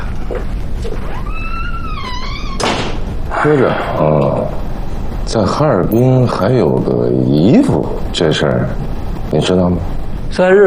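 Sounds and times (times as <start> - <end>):
low rumble: 0.0 - 10.6
door squealing as it is pulled shut: 1.0 - 3.7
door shutting with a dull thunk: 2.6 - 3.1
speech: 3.4 - 4.7, 5.3 - 10.6.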